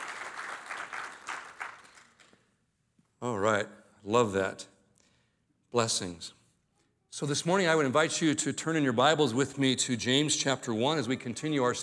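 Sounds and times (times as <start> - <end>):
audience applauding: 0.0 - 2.4
speech: 3.2 - 4.7, 5.7 - 6.4, 7.1 - 11.8.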